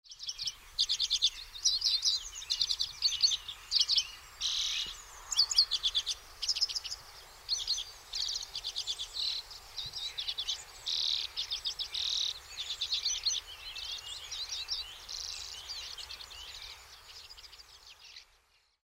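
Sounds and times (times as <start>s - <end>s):
lesser redpoll calling: 0.3s - 17.6s.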